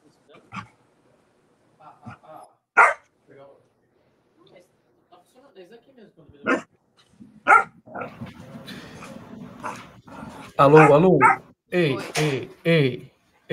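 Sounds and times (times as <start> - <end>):
dog barking and yipping: 2.8 - 3.1, 6.4 - 6.7, 7.4 - 8.1, 10.6 - 11.5
speech: 10.6 - 13.5.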